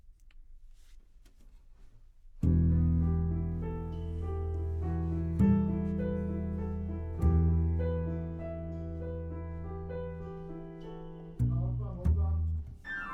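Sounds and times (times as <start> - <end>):
bass note C: 2.4 - 10.6, 11.2 - 13.1.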